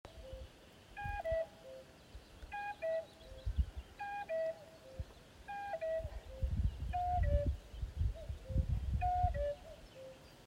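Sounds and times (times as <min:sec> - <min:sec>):
cuckoo calling by a lake: 0:00.1 - 0:10.4
flute by a lake: 0:01.0 - 0:01.8, 0:04.0 - 0:07.6, 0:08.2 - 0:10.1.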